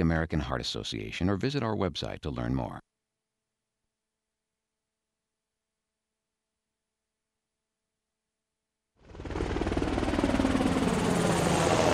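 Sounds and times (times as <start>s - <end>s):
speech: 0.0s - 2.9s
Navy Seahawk helicopter rotor chopping: 9.0s - 11.9s.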